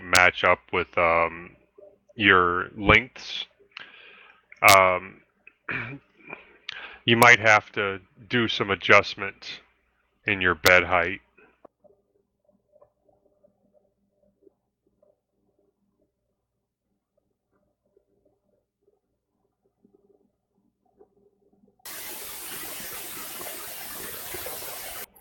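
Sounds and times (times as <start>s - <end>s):
speech: 0.2s - 1.6s, 2.2s - 3.5s, 4.6s - 6.1s, 7.1s - 9.6s, 10.3s - 11.2s
shower running water: 21.9s - 25.2s.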